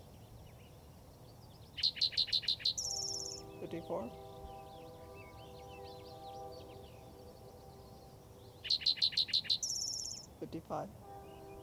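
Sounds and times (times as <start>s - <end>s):
spotted towhee singing in the Gibson Jack area: 1.7s - 10.4s, 11.2s - 11.6s
speech: 3.7s - 4.3s, 10.4s - 11.0s.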